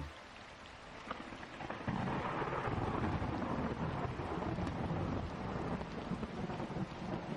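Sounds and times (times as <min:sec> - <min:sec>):
rain pouring: 0:00.0 - 0:07.3
deep roll of thunder rumbling: 0:01.6 - 0:07.3.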